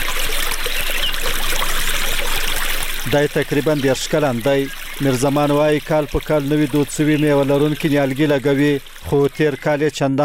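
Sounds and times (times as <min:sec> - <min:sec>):
water trickling and rushing as an autumn orchard is irrigated: 0:00.0 - 0:10.2
speech: 0:03.1 - 0:10.2.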